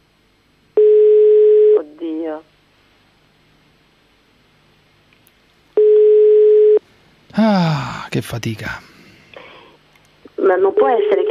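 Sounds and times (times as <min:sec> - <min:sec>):
telephone busy signal: 0:00.8 - 0:01.8, 0:05.8 - 0:06.8
speech: 0:02.3 - 0:02.6, 0:07.4 - 0:08.9, 0:10.5 - 0:11.2.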